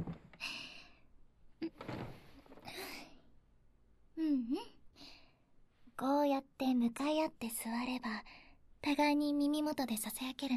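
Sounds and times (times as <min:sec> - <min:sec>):
chair set down with a solid thunk: 0:00.0 - 0:00.4, 0:01.7 - 0:02.7
chair scraping and dragging across the floor: 0:01.7 - 0:02.6
speech: 0:06.0 - 0:10.5.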